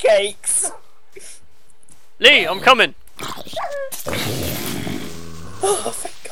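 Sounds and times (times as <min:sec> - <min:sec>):
speech: 0:00.1 - 0:00.8, 0:02.2 - 0:04.6, 0:05.6 - 0:06.2
dog growling: 0:02.5 - 0:06.2.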